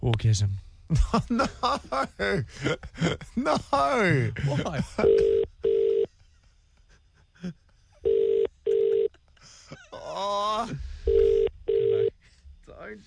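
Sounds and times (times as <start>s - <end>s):
speech: 0.1s - 5.5s, 7.4s - 7.6s
laughter: 0.9s - 5.5s, 6.1s - 8.0s, 8.7s - 10.4s
double-burst phone ringback tone: 5.0s - 6.1s, 8.0s - 9.1s, 11.1s - 12.1s.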